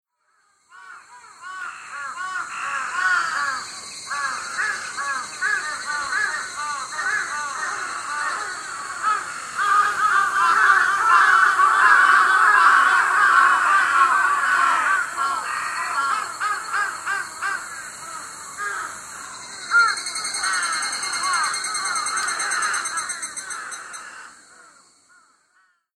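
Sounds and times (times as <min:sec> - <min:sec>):
crow calling: 0:00.3 - 0:25.9
goshawk calling: 0:04.1 - 0:24.3.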